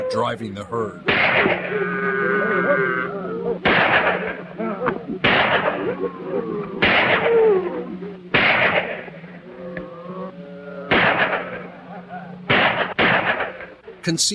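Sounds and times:
speech: 0.1s - 9.0s, 14.0s - 14.3s
gunshots fired from inside a cabin during a shootout: 1.1s - 1.8s, 3.6s - 4.4s, 5.2s - 6.0s, 6.8s - 7.5s, 8.3s - 9.1s, 10.9s - 11.7s, 12.5s - 13.8s.

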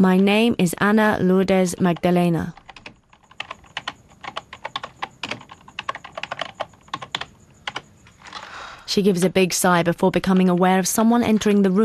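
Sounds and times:
speech: 0.0s - 2.6s, 8.9s - 11.8s
faint steady hum: 0.0s - 11.8s
woman typing on a computer keyboard: 1.6s - 8.4s.

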